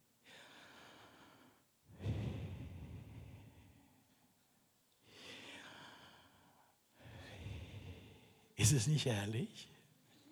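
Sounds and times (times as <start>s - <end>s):
slow deliberate human breathing in and out: 0.2s - 4.4s, 5.0s - 8.6s
speech: 8.6s - 9.8s.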